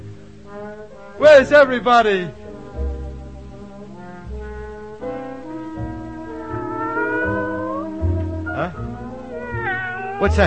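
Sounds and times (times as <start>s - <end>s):
speech: 0.5s - 2.4s, 10.2s - 10.4s
alley cat meowing: 6.0s - 10.4s.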